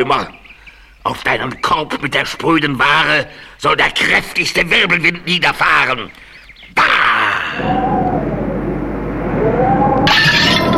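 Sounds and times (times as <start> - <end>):
speech: 0.0 - 0.4, 1.0 - 6.2
wind-like roar: 7.4 - 10.7
scattering glass debris: 9.0 - 10.7
glassware shattering into pieces: 10.1 - 10.7.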